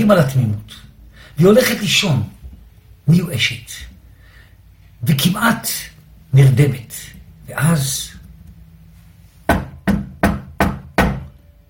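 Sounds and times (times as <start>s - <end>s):
speech: 0.1s - 2.4s, 3.1s - 3.9s, 5.0s - 8.2s
sharp knocks on a door: 9.5s - 11.3s.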